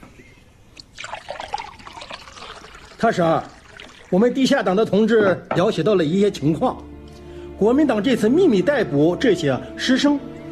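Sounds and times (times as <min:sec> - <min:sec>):
water pouring into a cup: 0:00.8 - 0:04.9
speech: 0:03.0 - 0:06.8, 0:07.6 - 0:10.3.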